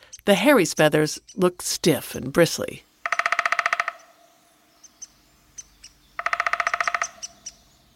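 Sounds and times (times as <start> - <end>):
speech: 0.2 - 2.9
downy woodpecker short pik calls: 3.0 - 4.2, 4.9 - 7.6
downy woodpecker descending whinny calls: 3.0 - 7.8.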